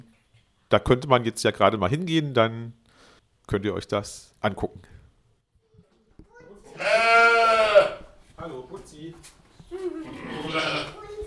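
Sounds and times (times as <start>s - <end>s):
speech: 0.7s - 2.8s, 3.5s - 5.0s, 8.4s - 11.0s
sheep bleating on a farm: 6.7s - 8.1s, 10.0s - 11.0s.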